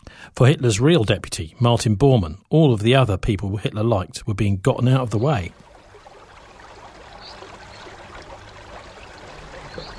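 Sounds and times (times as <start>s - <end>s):
speech: 0.2s - 5.7s
River flowing with rushing babble and splashing: 5.5s - 9.9s.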